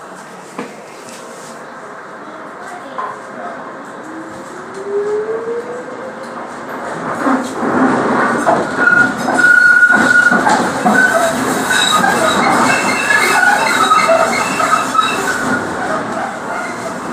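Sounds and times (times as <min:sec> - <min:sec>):
light railway train rumbling along its tracks: 0:00.0 - 0:17.1
thin high train wheel squeal: 0:08.7 - 0:17.0.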